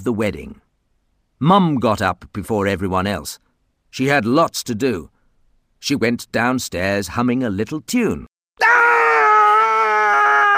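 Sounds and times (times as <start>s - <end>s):
speech: 0.0s - 0.6s, 1.4s - 5.1s, 5.8s - 8.9s
woman's terrible high-pitched scream in a house: 8.6s - 10.5s.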